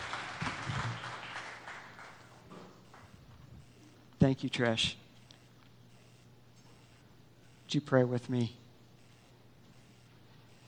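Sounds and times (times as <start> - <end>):
crowd of people clapping after a Bible reading: 0.0 - 3.1
speech: 4.2 - 5.0, 7.7 - 8.6.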